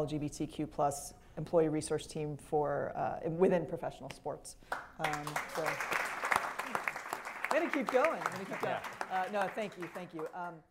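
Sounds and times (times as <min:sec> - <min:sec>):
speech: 0:00.0 - 0:06.1, 0:07.5 - 0:10.6
audience applause: 0:05.0 - 0:10.5
people cheering: 0:05.2 - 0:10.3.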